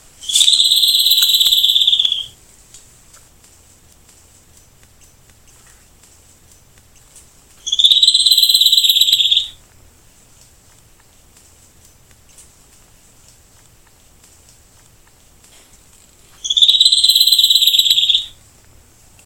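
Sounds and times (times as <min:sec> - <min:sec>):
Scalloped Antbird Myrmoderus ruficauda calling: 0:00.2 - 0:02.4, 0:06.9 - 0:09.6, 0:16.2 - 0:18.4.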